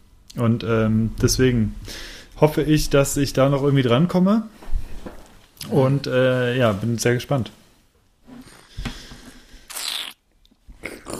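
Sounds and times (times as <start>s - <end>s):
speech: 0.4s - 7.6s
person slurping a drink: 8.4s - 8.8s, 9.7s - 10.2s, 10.8s - 11.1s.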